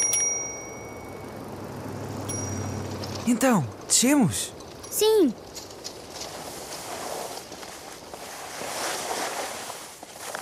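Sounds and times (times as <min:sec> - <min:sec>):
bicycle bell ringing as bike moves away: 0:00.0 - 0:04.0, 0:04.6 - 0:05.2
low rumble of traffic: 0:00.0 - 0:08.8
speech: 0:03.2 - 0:05.4.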